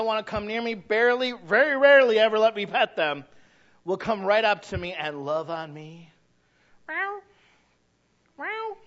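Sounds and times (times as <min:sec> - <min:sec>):
speech: 0:00.0 - 0:06.1, 0:06.9 - 0:07.3
person imitating a cat meowing to be fed: 0:06.9 - 0:07.3, 0:08.4 - 0:08.8.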